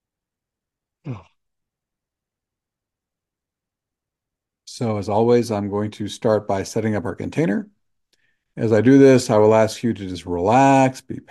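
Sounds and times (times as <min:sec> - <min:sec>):
speech: 0:01.0 - 0:01.3, 0:04.8 - 0:07.8, 0:08.6 - 0:11.2
person yawning: 0:01.0 - 0:01.4.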